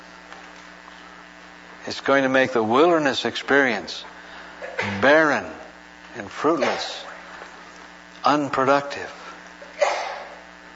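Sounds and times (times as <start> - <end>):
speech: 1.8 - 4.1, 4.8 - 5.6, 6.2 - 7.1, 8.2 - 9.2
person sneezing: 4.6 - 5.0, 9.6 - 10.4.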